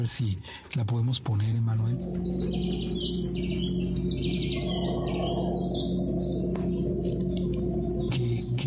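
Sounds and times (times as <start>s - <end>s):
speech: 0.0s - 6.7s
birds chirping in the jungle: 0.0s - 8.6s
insects buzzing in the jungle: 1.4s - 8.6s
howler monkeys roaring in the jungle: 2.0s - 8.6s.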